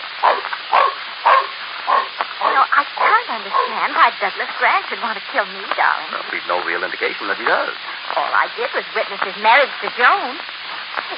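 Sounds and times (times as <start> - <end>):
dog barking: 0.2 - 3.9
speech: 2.6 - 11.1.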